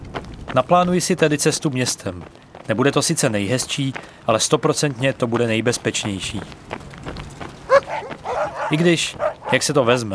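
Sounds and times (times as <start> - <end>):
speech: 0.6 - 6.7, 8.7 - 10.1
stray dogs barking and yelping: 7.6 - 9.8.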